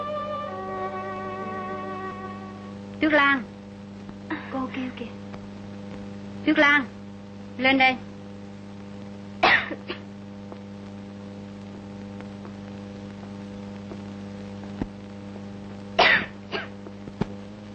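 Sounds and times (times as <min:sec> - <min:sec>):
steady electrical hum: 0:00.0 - 0:17.7
speech: 0:03.0 - 0:03.6, 0:04.6 - 0:05.3, 0:06.4 - 0:07.0, 0:07.6 - 0:08.0
person coughing: 0:09.4 - 0:10.1, 0:16.0 - 0:16.8.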